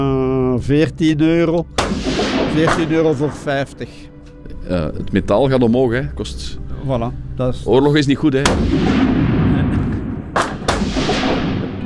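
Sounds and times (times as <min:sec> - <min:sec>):
speech: 0:00.0 - 0:04.1, 0:04.7 - 0:09.2
gunshots at a shooting range: 0:01.8 - 0:03.5, 0:08.5 - 0:11.8.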